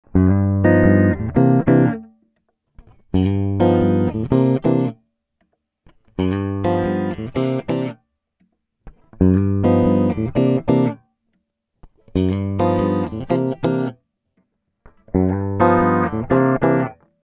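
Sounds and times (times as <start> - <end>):
bass guitar: 0.0 - 2.1, 2.8 - 5.0, 6.1 - 8.0, 8.9 - 11.0, 12.0 - 14.0, 14.9 - 17.0.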